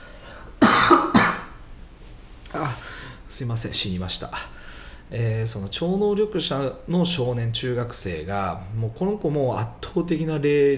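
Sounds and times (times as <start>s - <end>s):
throat clearing: 0.6s - 1.6s, 2.5s - 2.9s
speech: 2.5s - 10.7s.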